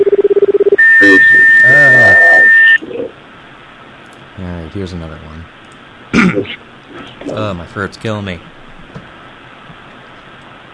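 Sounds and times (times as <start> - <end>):
high-pitched telephone line tone: 0.0 - 2.8
short low telephone beeps: 0.8 - 2.8
speech: 1.0 - 1.5, 7.5 - 8.5.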